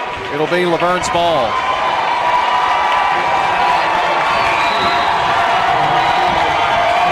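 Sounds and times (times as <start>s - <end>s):
large indoor crowd at a basketball game cheering and shouting: 0.0s - 7.1s
speech: 0.3s - 1.7s
scattered whoops from basketball crowd: 1.5s - 7.1s.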